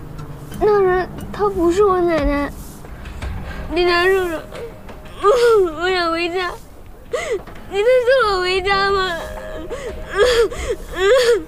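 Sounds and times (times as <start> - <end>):
speech: 0.6 - 2.6, 3.7 - 4.6, 5.2 - 11.4
frightened lost child crying: 3.9 - 11.4.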